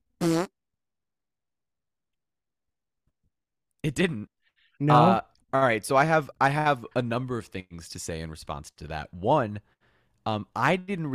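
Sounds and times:
fart sound effect: 0.2 - 0.5
speech: 3.8 - 11.1.

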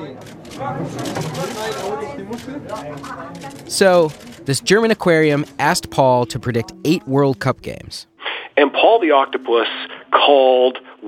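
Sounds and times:
murmur of gathered media at a German aquarium: 0.0 - 7.6
camera shutters clicking: 0.2 - 4.5
speech: 0.6 - 11.0.

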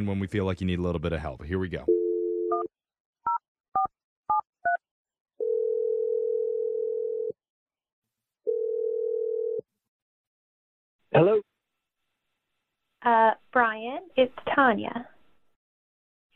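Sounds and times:
speech: 0.0 - 1.9, 11.1 - 11.3, 13.0 - 15.1
steady clear telephone ringing tone: 1.9 - 2.7, 5.4 - 7.4, 8.5 - 9.6.

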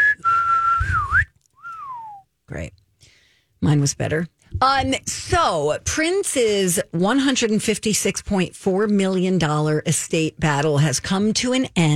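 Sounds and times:
person whistling a short tune: 0.0 - 2.3
speech: 3.6 - 11.9.

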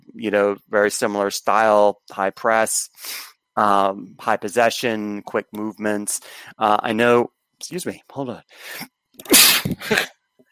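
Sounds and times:
speech: 0.2 - 10.1
person sneezing: 8.7 - 10.1.

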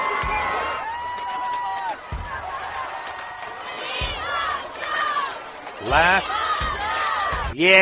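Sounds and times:
rhythmic low thumps: 0.0 - 7.8
large crowd chanting and yelling at a rally: 2.0 - 7.6
speech: 5.9 - 6.4, 7.6 - 7.8.

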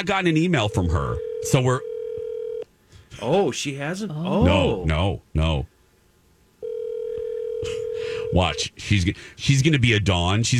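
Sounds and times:
speech: 0.0 - 1.9, 3.2 - 5.7, 7.6 - 10.5
steady loud telephone dial tone: 1.1 - 2.6, 6.6 - 8.6.

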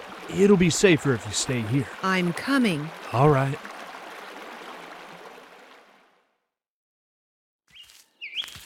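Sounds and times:
creek water rushing: 0.0 - 6.2
speech: 0.3 - 3.7
bird chirps: 7.7 - 8.6.

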